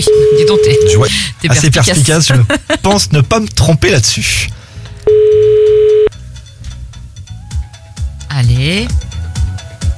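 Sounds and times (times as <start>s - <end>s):
telephone ring tone on an outgoing call: 0.0s - 1.0s, 5.1s - 6.1s
speech: 0.0s - 5.8s, 8.4s - 9.1s.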